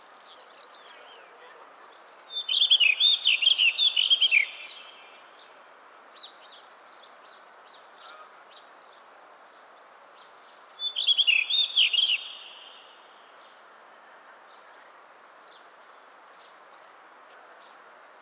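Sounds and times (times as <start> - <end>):
low steady hiss: 0.0 - 18.1
bird singing quick high twittering phrases: 2.1 - 5.2, 10.6 - 13.3.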